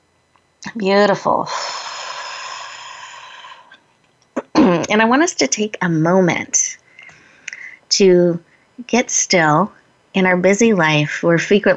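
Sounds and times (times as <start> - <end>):
speech: 0.6 - 1.8, 4.9 - 6.8, 8.0 - 11.7
deep belly breath drawn in: 1.5 - 3.8.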